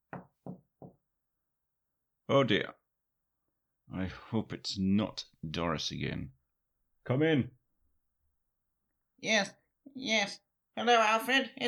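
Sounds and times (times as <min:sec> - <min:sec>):
firm knocking on a wooden door: 0:00.0 - 0:01.0
speech: 0:02.3 - 0:02.8, 0:03.9 - 0:06.4, 0:07.1 - 0:07.6, 0:09.2 - 0:11.6.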